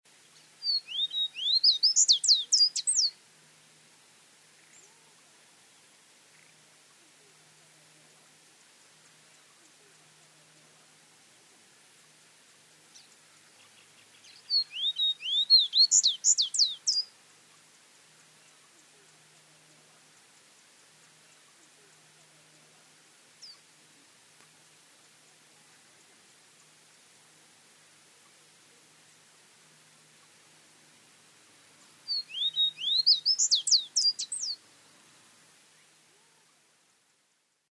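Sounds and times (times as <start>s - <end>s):
Tawny-bellied seedeater Sporophila minuta singing: 0.1s - 3.2s, 4.5s - 7.4s, 12.8s - 17.7s, 23.4s - 23.7s, 31.8s - 34.7s.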